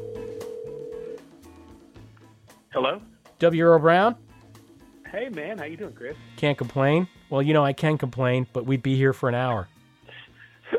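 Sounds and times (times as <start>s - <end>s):
telephone ringback tone on an outgoing call: 0.0s - 1.3s
speech: 2.8s - 4.2s, 5.1s - 9.7s.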